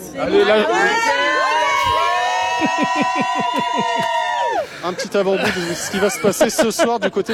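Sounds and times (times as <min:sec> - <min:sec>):
crowd of fans cheering and shouting: 0:00.0 - 0:05.4
speech: 0:00.2 - 0:01.4, 0:02.6 - 0:07.3
high-pitched whoops: 0:01.0 - 0:04.6
laughter: 0:01.7 - 0:07.3.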